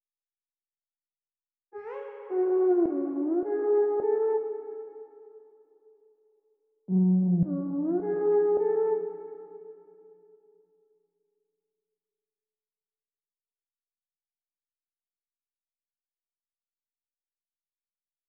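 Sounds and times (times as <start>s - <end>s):
atmospheric synth lead melody in trap style: 1.8s - 5.2s, 6.9s - 9.8s.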